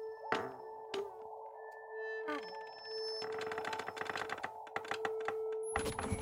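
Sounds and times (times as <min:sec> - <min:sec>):
chair squeaking: 0:00.3 - 0:01.2, 0:02.2 - 0:06.2.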